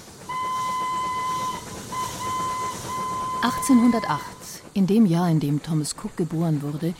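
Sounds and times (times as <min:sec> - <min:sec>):
moving steam engine rumble and hiss: 0:00.0 - 0:06.9
steam train whistle: 0:00.2 - 0:04.6
speech: 0:03.4 - 0:06.9.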